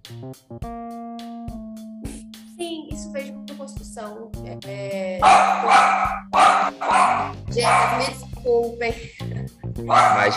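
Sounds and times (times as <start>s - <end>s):
speech: 0.1s - 1.0s, 2.6s - 10.3s
dogs barking: 5.2s - 8.2s, 9.9s - 10.3s.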